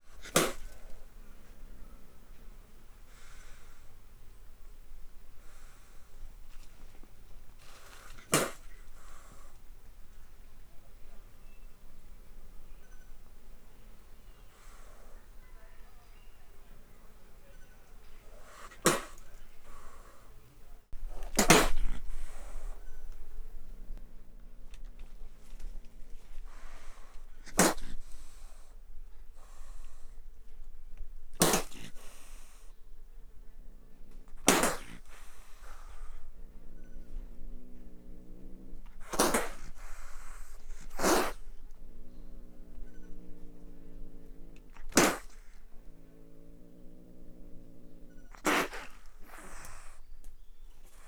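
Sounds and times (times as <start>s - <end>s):
wildcat spitting and hissing: 0.0s - 17.5s, 18.2s - 24.4s, 26.3s - 28.7s, 31.4s - 32.7s, 34.3s - 51.0s.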